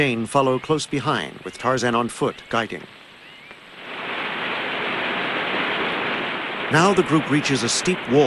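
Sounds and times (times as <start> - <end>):
speech: 0.0 - 3.0, 6.7 - 8.2
waterfall plunging into a shallow stream: 3.7 - 8.2.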